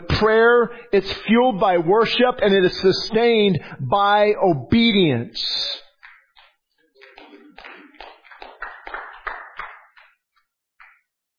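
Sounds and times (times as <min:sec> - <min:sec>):
speech: 0:00.2 - 0:05.8
audience clapping: 0:05.9 - 0:10.2.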